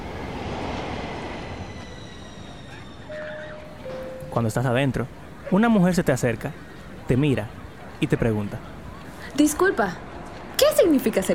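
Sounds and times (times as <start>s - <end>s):
metro train wheels and carriages rumbling arriving at a station: 0.0s - 7.0s
metro train thin sustained wheel squeal: 0.5s - 4.4s
speech: 4.4s - 8.7s, 9.4s - 11.3s.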